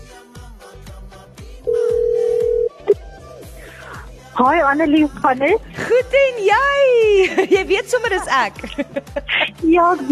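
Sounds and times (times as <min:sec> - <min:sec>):
ringback tone from an outgoing phone call: 0:01.7 - 0:02.9
speech: 0:04.4 - 0:10.1
laughter: 0:07.1 - 0:10.1.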